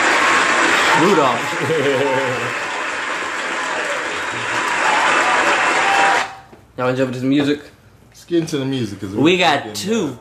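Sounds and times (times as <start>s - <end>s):
crowd clapping: 0.0s - 6.5s
laughter: 0.2s - 5.4s
speech: 1.0s - 2.7s, 6.8s - 10.1s.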